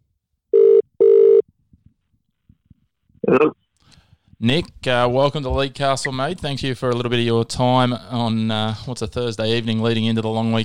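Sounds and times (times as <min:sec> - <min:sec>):
ringback tones of an outgoing phone call: 0:00.6 - 0:01.4
speech: 0:03.3 - 0:03.6, 0:04.4 - 0:10.6.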